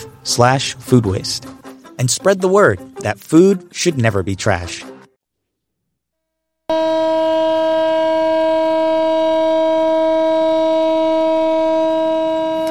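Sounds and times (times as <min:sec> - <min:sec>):
speech: 0:00.2 - 0:04.9, 0:06.7 - 0:07.1
civil defense siren in Tel Aviv marking anniversary of October 7th attacks: 0:06.7 - 0:12.7.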